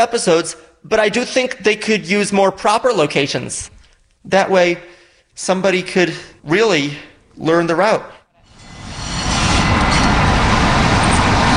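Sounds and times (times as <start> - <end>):
speech: 0.0 - 8.2
subway train on the Boston T roaring by: 8.4 - 11.5.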